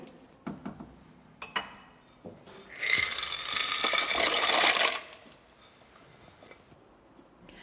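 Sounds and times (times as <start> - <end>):
bubbling hiss of boiling milk and water: 2.5 - 5.4
dry macaroni clattering into a pot of boiling milk and water: 2.7 - 5.4.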